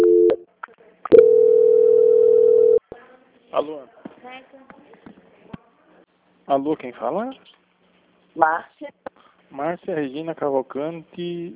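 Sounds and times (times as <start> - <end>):
telephone call transfer tone on a bank customer-service call: 0.0 - 0.4, 1.1 - 2.8
speech: 3.6 - 4.8, 6.5 - 7.6, 8.4 - 11.5.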